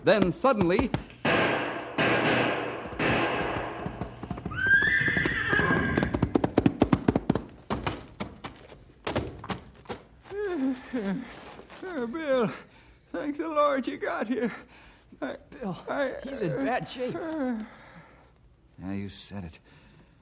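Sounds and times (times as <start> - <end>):
speech: 0.0 - 1.4, 11.0 - 17.8, 18.8 - 19.8
hooves of a charging bull clattering: 0.0 - 10.2
horse whinnying: 4.4 - 6.3.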